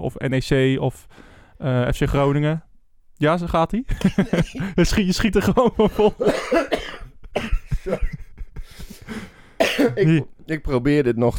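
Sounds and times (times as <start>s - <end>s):
speech: 0.0s - 8.2s, 9.1s - 11.3s
strained breaths between coughs: 1.1s - 1.6s, 8.6s - 9.6s
laughter: 3.9s - 6.3s, 7.5s - 10.2s
person coughing harshly after coffee went down the wrong way: 6.0s - 10.2s.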